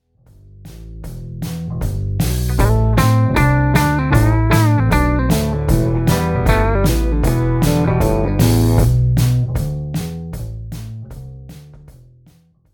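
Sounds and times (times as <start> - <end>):
blues guitar turnaround: 2.2 - 9.6.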